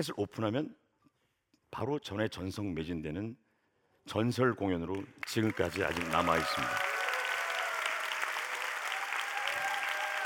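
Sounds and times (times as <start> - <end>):
speech: 0.0 - 0.8, 1.7 - 3.4, 4.0 - 6.9
audience applause: 5.0 - 10.2.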